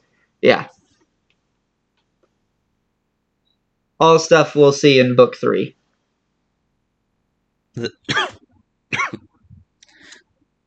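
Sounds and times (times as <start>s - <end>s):
speech: 4.0s - 5.8s, 7.8s - 8.3s
throat clearing: 8.0s - 9.3s
person coughing: 8.1s - 9.3s.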